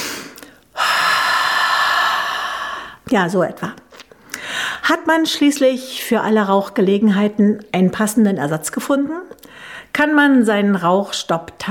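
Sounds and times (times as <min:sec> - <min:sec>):
deep breathing during a relaxation exercise by an open window: 0:00.0 - 0:03.0, 0:04.3 - 0:04.8
speech: 0:03.1 - 0:03.8, 0:04.9 - 0:11.6.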